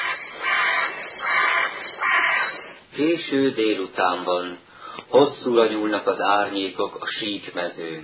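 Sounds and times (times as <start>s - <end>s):
several crows cawing loudly in a tree: 0.0s - 2.8s
speech: 2.3s - 8.0s.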